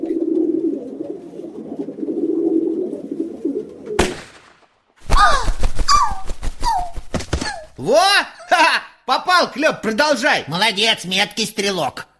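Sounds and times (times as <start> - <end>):
turtle dove cooing: 0.0 - 4.0
sharp crack: 4.0 - 7.6
speech: 9.4 - 12.1.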